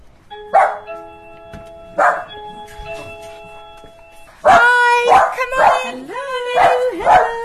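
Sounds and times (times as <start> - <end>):
steady ringing tone: 0.3 - 4.6
two dogs barking excitedly at a visitor at a house door: 0.5 - 1.0, 2.0 - 2.4, 4.4 - 7.4
quiet scuffling of dogs: 0.9 - 5.8.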